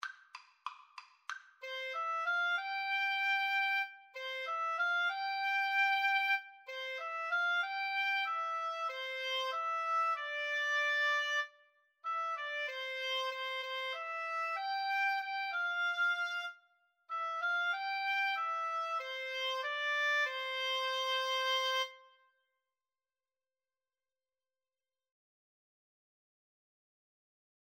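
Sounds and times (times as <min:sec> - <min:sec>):
oboe duet: 0:01.6 - 0:22.1.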